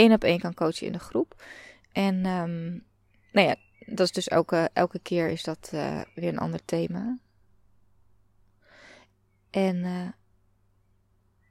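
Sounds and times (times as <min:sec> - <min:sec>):
speech: 0:00.0 - 0:07.2, 0:09.5 - 0:10.2
small bird chirp: 0:02.4 - 0:07.5, 0:10.8 - 0:11.5.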